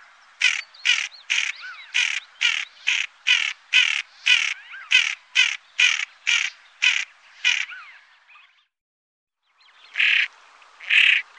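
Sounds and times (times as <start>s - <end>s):
common pochard harsh rasping calls: 0.4s - 7.7s, 10.0s - 11.2s.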